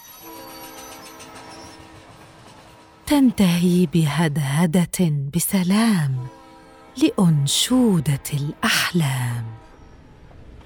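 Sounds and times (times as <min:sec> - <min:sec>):
high metallic squealing of train on rails: 0:00.0 - 0:02.8
train rolling along rails: 0:00.0 - 0:10.6
speech: 0:03.1 - 0:06.4, 0:07.0 - 0:09.6.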